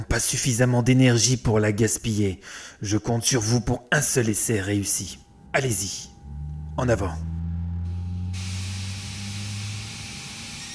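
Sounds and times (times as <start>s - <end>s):
speech: 0.1s - 6.1s, 6.8s - 7.3s
steady low machine hum: 4.2s - 10.7s
rising hiss like escaping steam: 5.2s - 10.7s.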